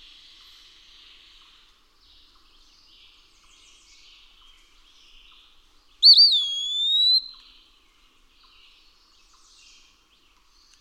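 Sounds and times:
Eastern wood-pewee song: 6.0 - 7.3.

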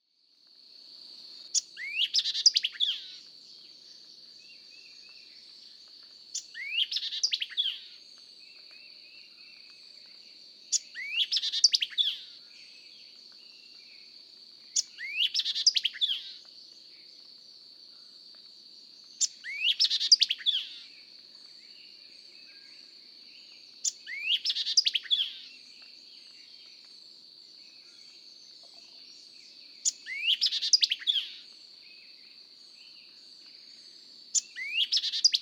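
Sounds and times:
White-eyed Vireo vocalizing: 1.5 - 3.3, 6.3 - 8.0, 8.6 - 14.0, 14.8 - 16.4, 19.2 - 20.9, 22.3 - 26.8, 27.6 - 32.0, 34.4 - 35.3.

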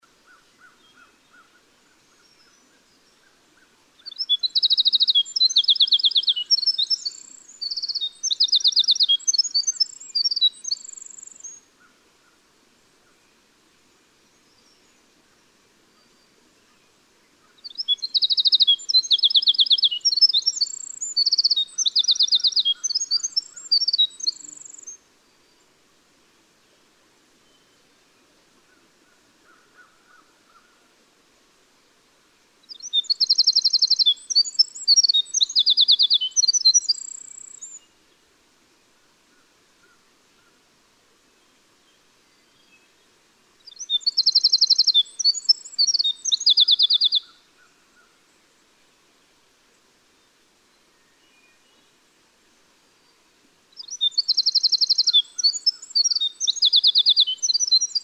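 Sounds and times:
winter wren: 4.0 - 11.6, 17.6 - 25.0, 32.6 - 37.8, 43.6 - 47.3, 53.8 - 58.0.

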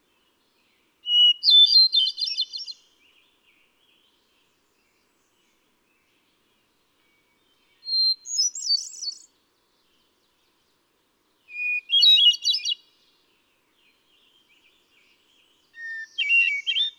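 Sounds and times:
hermit thrush singing: 0.0 - 16.9.

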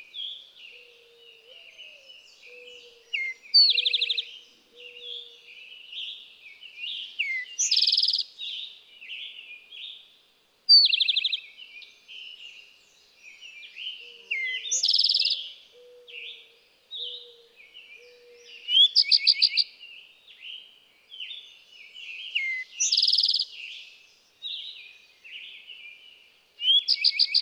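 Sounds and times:
Eastern towhee singing a bright note and fast trill: 0.0 - 5.5, 7.2 - 8.3, 13.3 - 19.7, 21.2 - 23.8, 26.6 - 27.3
busy chorus of other songbirds: 0.0 - 27.3.

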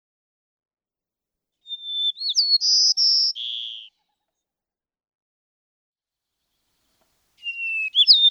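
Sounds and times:
white-crowned sparrow singing: 1.6 - 4.0, 7.4 - 8.2.

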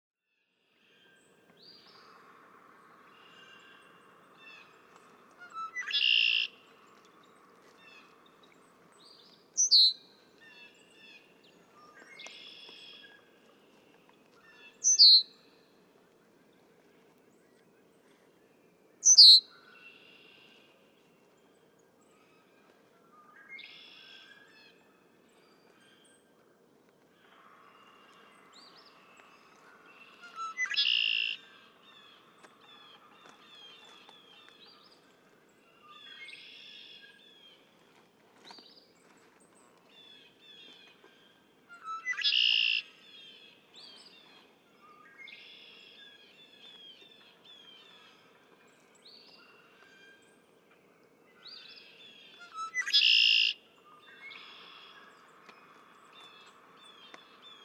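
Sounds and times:
Red-winged Blackbird: 5.4 - 6.6, 9.6 - 10.0, 14.8 - 15.3, 19.0 - 19.5, 30.2 - 31.5, 41.8 - 43.0, 52.4 - 53.6.

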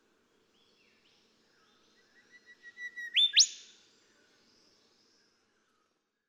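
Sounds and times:
golden whistler singing: 2.2 - 3.8.

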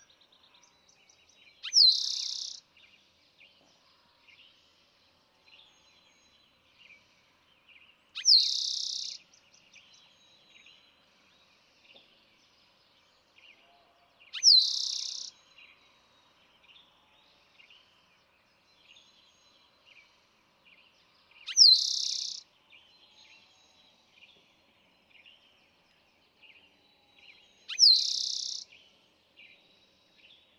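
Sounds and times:
soft chirps: 0.0 - 3.7, 7.7 - 13.5, 14.2 - 17.0, 18.8 - 22.4, 23.0 - 30.5
Eastern towhee singing a sharp note and buzzy trill: 1.5 - 2.6, 8.2 - 10.0, 14.3 - 15.4, 21.4 - 22.5, 27.3 - 29.0.

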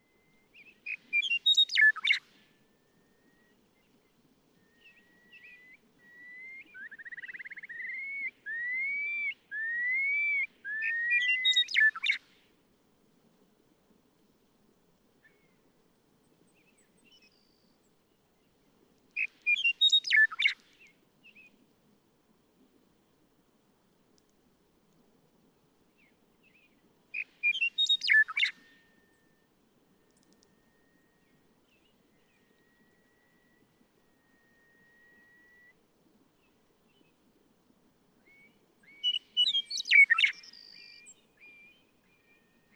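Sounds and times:
Western Meadowlark: 0.0 - 12.5, 16.5 - 18.6, 19.2 - 21.6, 26.0 - 35.8, 38.2 - 42.7.

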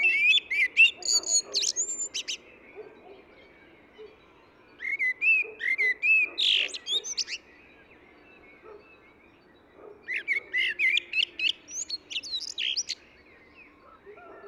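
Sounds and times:
Eurasian blackbird squeaky high twitter: 0.0 - 3.2, 4.8 - 7.4, 10.0 - 13.0
Eurasian blackbird fluted mellow warbled song: 0.0 - 14.4.

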